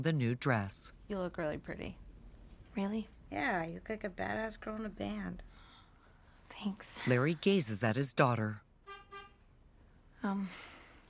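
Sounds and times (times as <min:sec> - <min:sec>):
speech: 0:00.0 - 0:02.0, 0:02.8 - 0:05.5, 0:06.5 - 0:08.6, 0:10.2 - 0:10.7
car horn honking: 0:08.8 - 0:09.4.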